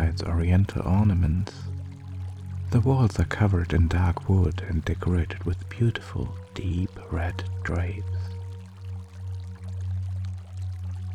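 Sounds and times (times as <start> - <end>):
small waterfall trickling: 0.0 - 11.1
speech: 0.2 - 1.7, 2.7 - 8.2.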